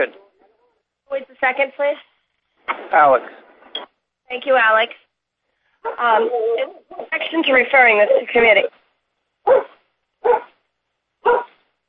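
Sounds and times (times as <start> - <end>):
speech: 0.0 - 0.2, 1.1 - 2.1, 2.7 - 3.4, 4.3 - 5.0, 5.8 - 8.8, 9.4 - 9.7
dog barking: 5.8 - 7.1, 9.4 - 10.6, 11.2 - 11.6.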